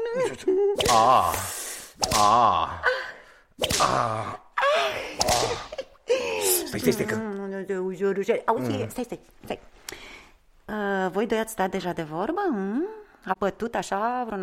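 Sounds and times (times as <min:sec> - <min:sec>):
speech: 0:00.2 - 0:03.0, 0:03.6 - 0:04.4, 0:06.7 - 0:09.7, 0:10.7 - 0:14.4
sharp whip lashes: 0:00.8 - 0:02.5, 0:03.6 - 0:04.2, 0:05.2 - 0:05.8
loud strained groan or cry of pain: 0:00.8 - 0:03.1, 0:03.7 - 0:06.8.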